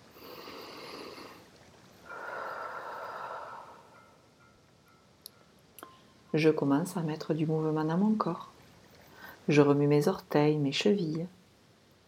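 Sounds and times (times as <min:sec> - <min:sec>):
slow deep breaths during a guided relaxation: 0:00.1 - 0:04.2, 0:09.0 - 0:09.4
speech: 0:06.3 - 0:08.5, 0:09.5 - 0:11.4.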